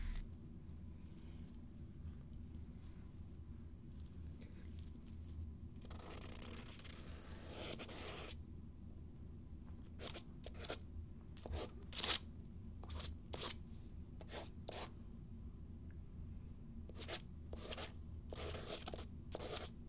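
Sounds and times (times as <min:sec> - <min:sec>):
steady low hum: 0:00.0 - 0:19.8
pen or marker scratching across paper: 0:05.9 - 0:08.4, 0:16.9 - 0:19.7.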